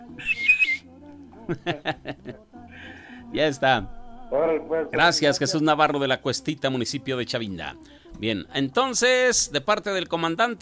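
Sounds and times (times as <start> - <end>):
person whistling a short wavering phrase: 0.1 - 0.9
laughter: 1.4 - 2.4
speech: 1.5 - 2.5, 3.3 - 10.6.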